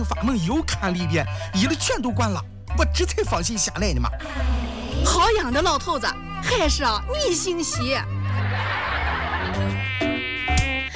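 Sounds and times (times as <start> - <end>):
speech: 0.0 - 8.7
laughter: 8.2 - 9.8
mosquito buzzing inside a home: 9.6 - 10.9.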